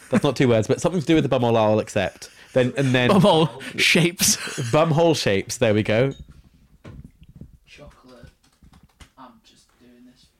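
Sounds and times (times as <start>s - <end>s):
speech: 0.1s - 6.3s
laughter: 2.5s - 5.2s
forceful typing on a computer keyboard: 8.0s - 9.1s.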